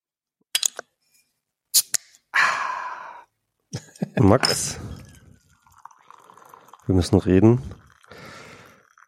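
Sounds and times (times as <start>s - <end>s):
speech: 4.2s - 4.9s, 6.9s - 7.8s
tea pouring into a cup: 4.5s - 9.0s.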